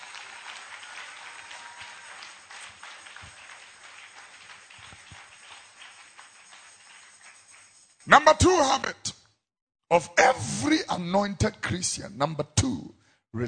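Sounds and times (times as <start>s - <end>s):
audience clapping: 0.0s - 8.9s
speech: 8.1s - 9.0s, 9.9s - 13.4s.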